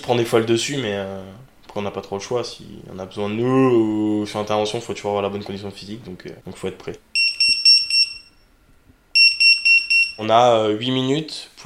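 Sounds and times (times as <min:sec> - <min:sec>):
speech: 0:00.0 - 0:07.1, 0:10.2 - 0:11.6
fire station alarm beeping for a call-out to a blaze in an apartment building: 0:07.2 - 0:08.5, 0:09.1 - 0:10.3.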